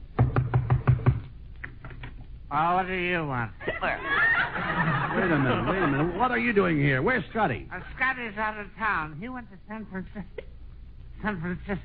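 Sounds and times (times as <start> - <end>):
firm hollow knocks on a door: 0.2 - 1.2
speech: 2.5 - 10.5, 11.2 - 11.8
laughter: 3.6 - 6.5.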